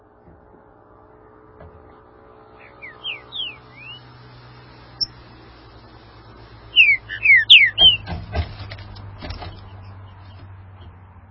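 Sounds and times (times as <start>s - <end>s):
low steady hum: 0.0s - 11.2s
green-winged saltator song of slurred whistles: 2.6s - 4.2s, 5.0s - 5.2s, 6.7s - 8.1s.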